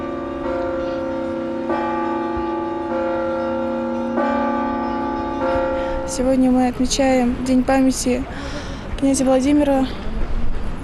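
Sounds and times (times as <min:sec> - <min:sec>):
church bells ringing in Kuzbass Russia for the Day of the Baptism of Rus: 0:00.0 - 0:08.1
speech: 0:06.1 - 0:10.1.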